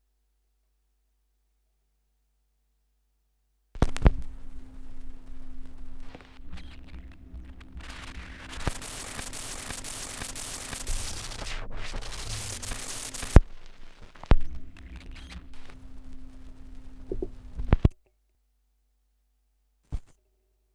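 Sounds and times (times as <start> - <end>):
78rpm record surface noise: 3.8 - 18.0.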